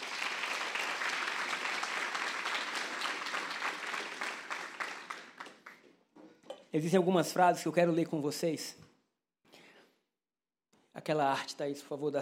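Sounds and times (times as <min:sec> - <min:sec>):
large crowd applauding: 0:00.0 - 0:05.9
speech: 0:06.7 - 0:08.8, 0:11.0 - 0:12.1.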